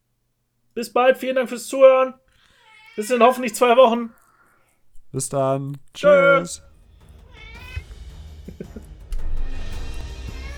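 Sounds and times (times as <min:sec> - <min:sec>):
speech: 0:00.8 - 0:02.2, 0:03.0 - 0:04.2, 0:05.1 - 0:06.7
cat meowing: 0:02.5 - 0:04.6, 0:07.2 - 0:08.0, 0:10.0 - 0:10.5.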